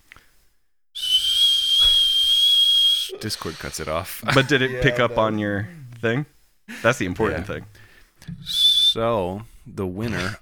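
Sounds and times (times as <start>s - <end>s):
loud human whistle: 1.0s - 3.2s, 8.5s - 9.0s
laughter: 3.1s - 7.8s
speech: 3.2s - 10.4s.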